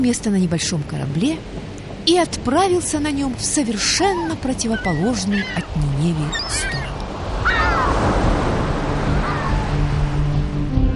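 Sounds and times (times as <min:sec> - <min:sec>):
speech: 0:00.0 - 0:08.3
wailing bird-like cries: 0:03.7 - 0:08.1, 0:09.0 - 0:09.9
stormy sea waves crashing against the sides of a small ship: 0:06.5 - 0:10.8.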